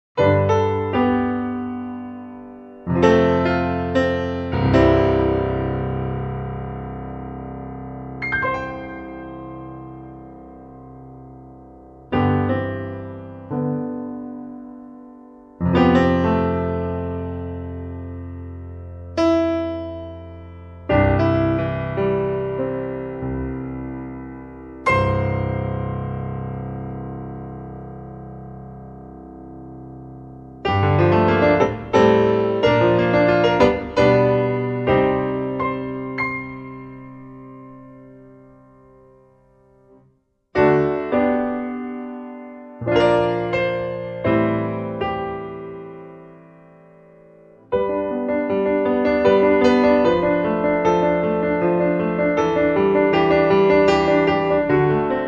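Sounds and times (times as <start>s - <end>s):
vintage Steinway D grand piano: 0.0s - 55.2s.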